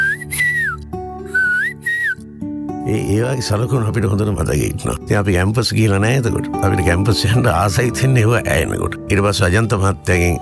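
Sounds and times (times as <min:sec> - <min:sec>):
melodic whistling in a song: 0:00.0 - 0:02.3
speech: 0:02.9 - 0:10.4.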